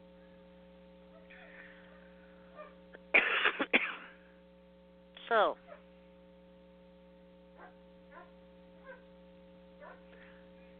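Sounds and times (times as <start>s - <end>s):
steady low electrical hum: 0.0s - 10.7s
agitated dog barks and whimpering yelps: 1.1s - 1.5s, 2.5s - 2.8s, 7.6s - 9.1s, 9.8s - 10.1s
speech: 5.3s - 5.6s.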